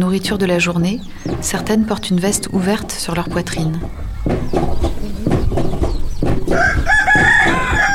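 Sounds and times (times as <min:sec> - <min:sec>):
speech: 0:00.0 - 0:05.0, 0:06.5 - 0:06.9
chickens clucking: 0:00.0 - 0:07.9
steady farmyard noise: 0:00.0 - 0:07.9
rooster letting out a long strained crow: 0:06.5 - 0:07.9.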